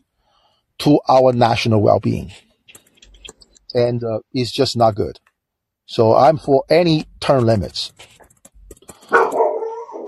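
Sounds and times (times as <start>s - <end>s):
speech: 0.8s - 2.5s, 3.7s - 5.2s, 5.9s - 8.1s
dog barking: 9.0s - 10.0s.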